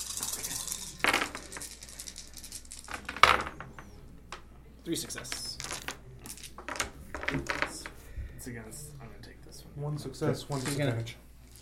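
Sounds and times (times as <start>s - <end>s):
tabletop dice clattering across a hard surface: 0.0s - 3.9s, 5.1s - 8.0s, 10.5s - 11.6s
speech: 4.8s - 5.5s, 7.3s - 7.8s, 8.4s - 11.2s.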